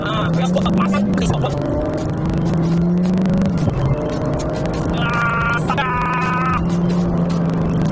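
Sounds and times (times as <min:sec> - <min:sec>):
manual-transmission car engine droning while being driven: 0:00.0 - 0:07.8.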